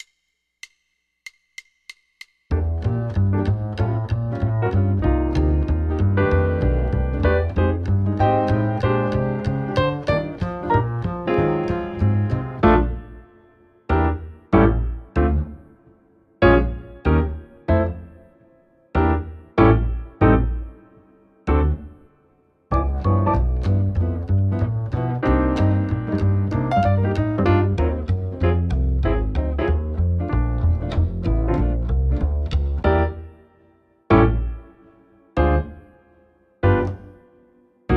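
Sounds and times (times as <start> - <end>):
jazz swing music without drums trading eights: 2.5 - 13.3, 13.9 - 15.6, 16.4 - 18.1, 19.0 - 20.8, 22.7 - 33.3, 34.1 - 34.7, 36.6 - 37.2.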